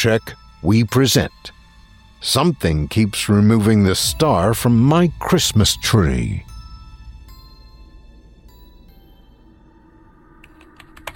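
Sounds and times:
speech: 0.0 - 1.6, 2.2 - 6.5
low sustained musical drone: 0.0 - 11.1
keyboard clicks of someone typing with one hand from a hospital bed: 10.4 - 11.1.

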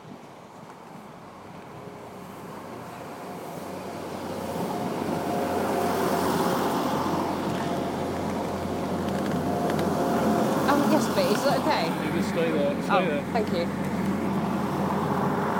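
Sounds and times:
train rumbling past: 1.3 - 15.5.

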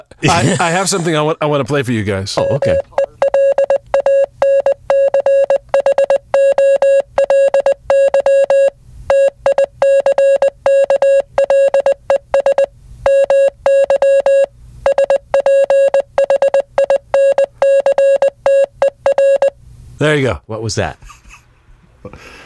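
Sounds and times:
speech: 0.0 - 3.0, 20.0 - 21.2, 22.0 - 22.4
Morse code beeps from a mid-pitched electronic tone: 2.4 - 19.6.

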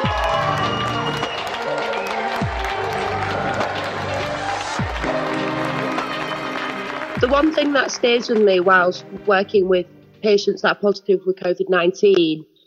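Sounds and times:
large crowd applauding and cheering nurses: 0.0 - 9.3
speech: 7.2 - 12.5.

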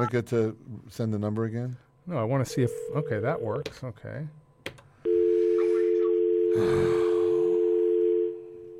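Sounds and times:
speech: 0.0 - 4.8, 6.6 - 7.2
steady telephone line tone on a phone call: 2.5 - 3.6, 5.1 - 8.7
breathy noise: 6.4 - 7.8.

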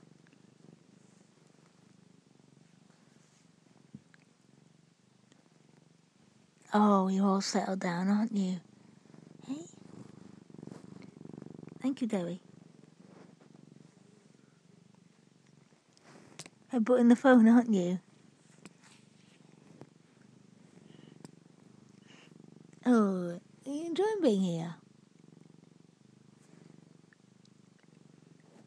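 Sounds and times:
female domestic cat purring loudly: 0.0 - 28.6
person speaking softly: 6.7 - 8.6, 9.4 - 9.8, 11.8 - 12.4, 16.7 - 18.0, 22.8 - 24.8
speech: 6.7 - 8.7, 11.8 - 12.5, 16.8 - 18.0.

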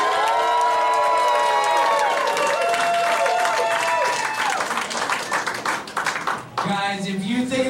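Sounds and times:
audience cheering with shouted voices and whoops: 0.0 - 5.4
audience applauding for a contestant: 0.0 - 6.8.

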